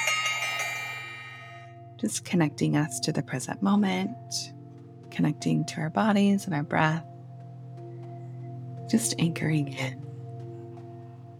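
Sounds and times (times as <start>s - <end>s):
bell struck to open a session: 0.0s - 1.8s
speech: 2.0s - 4.6s, 5.2s - 7.1s, 8.9s - 10.0s.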